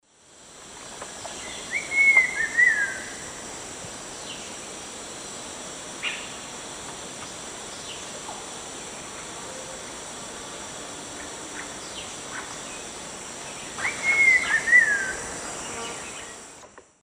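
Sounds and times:
Saltator grossus singing in the Eastern Lowlands of South America: 0:01.3 - 0:03.2, 0:11.2 - 0:16.4.

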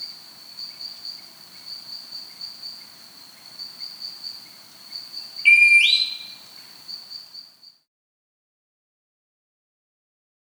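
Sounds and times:
steady high insect drone: 0:00.0 - 0:07.7
grey-tailed piha whistled call in South America: 0:05.4 - 0:06.7.

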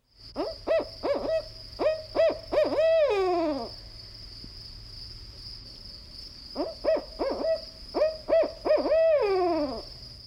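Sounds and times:
steady insect-like whine: 0:00.0 - 0:10.2
barred owl hooting song: 0:00.4 - 0:03.7, 0:06.6 - 0:09.9.

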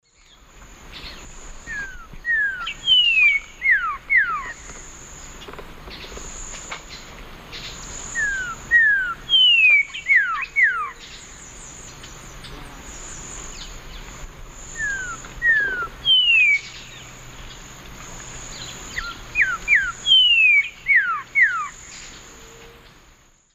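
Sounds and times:
Saltator coerulescens singing in the Eastern Lowlands of South America: 0:00.0 - 0:23.5.

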